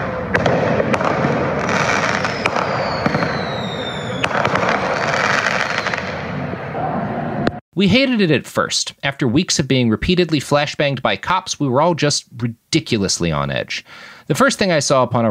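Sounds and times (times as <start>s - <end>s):
firework mortars exploding: 0.0s - 6.4s
noisy outdoor crowd roar: 0.0s - 7.6s
speech: 7.8s - 15.2s.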